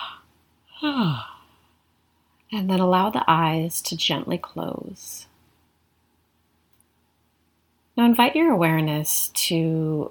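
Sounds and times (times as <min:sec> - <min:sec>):
person yawning: 0:00.0 - 0:01.5
speech: 0:02.5 - 0:05.3, 0:08.0 - 0:10.0.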